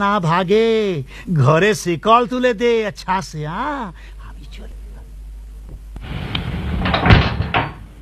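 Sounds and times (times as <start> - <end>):
speech: 0.0 - 4.8
door shutting with thuds: 6.0 - 7.9.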